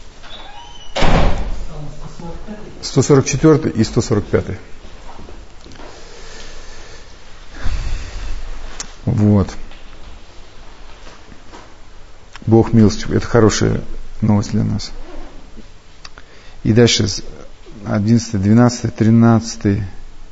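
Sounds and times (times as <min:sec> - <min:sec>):
door shutting with a thud: 0:00.2 - 0:01.7
speech: 0:01.8 - 0:04.7, 0:09.2 - 0:09.6, 0:12.5 - 0:15.1, 0:16.6 - 0:20.0.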